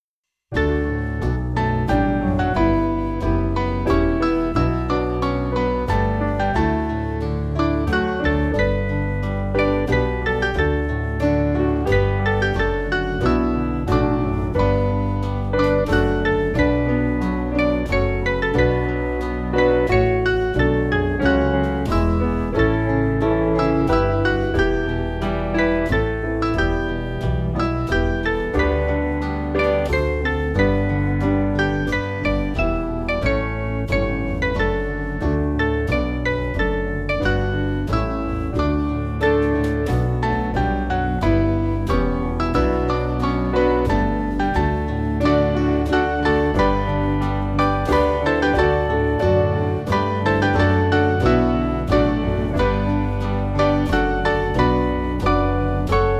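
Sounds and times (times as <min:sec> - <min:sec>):
piano piece: 0:00.5 - 0:56.1.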